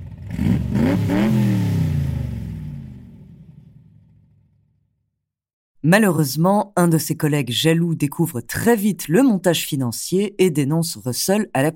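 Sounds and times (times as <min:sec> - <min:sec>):
car engine revving: 0:00.0 - 0:03.6
speech: 0:05.8 - 0:11.7.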